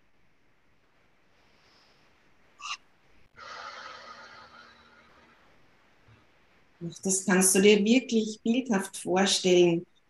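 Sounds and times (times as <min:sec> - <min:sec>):
long airy exhale through mouth: 0:03.4 - 0:05.3
deep breath in through nose: 0:03.4 - 0:05.4
speech: 0:06.8 - 0:09.9.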